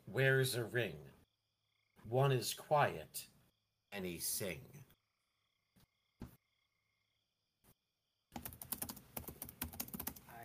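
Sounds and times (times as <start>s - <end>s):
speech: 0.1s - 1.1s, 2.0s - 3.3s, 3.9s - 4.9s
typing on a computer keyboard: 8.3s - 10.4s.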